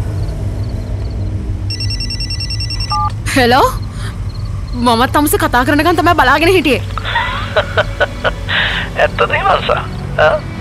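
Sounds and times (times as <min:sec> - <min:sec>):
loud steady rumbling noise: 0:00.0 - 0:10.5
mobile phone ringtone with bright electronic warble: 0:01.7 - 0:03.2
speech: 0:03.4 - 0:03.8, 0:04.7 - 0:10.5
laughter: 0:07.0 - 0:09.0.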